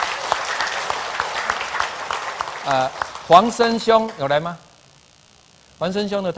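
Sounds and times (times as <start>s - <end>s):
people clapping at a church gathering: 0.0s - 4.5s
speech: 2.6s - 4.6s, 5.8s - 6.3s.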